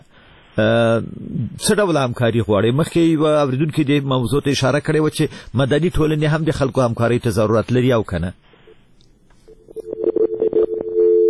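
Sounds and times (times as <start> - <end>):
speech: 0.6 - 8.5
disconnected telephone call tone: 9.7 - 11.2.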